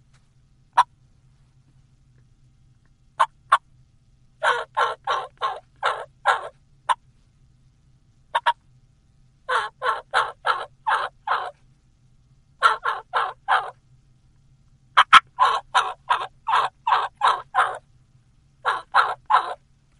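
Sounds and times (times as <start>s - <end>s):
gobbler yelps played on a turkey call: 4.4s - 7.0s, 8.4s - 8.6s, 9.5s - 11.6s, 12.6s - 13.8s, 15.0s - 17.8s, 18.6s - 19.6s.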